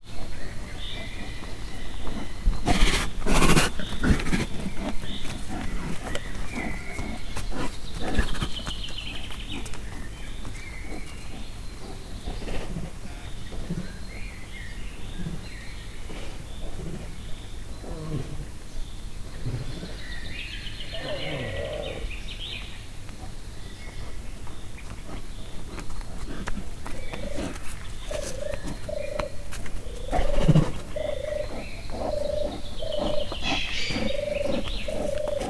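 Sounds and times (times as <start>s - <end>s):
Bengal tiger at Miskolc zoo: 0.0s - 35.4s
birds at a zoo: 0.0s - 35.4s.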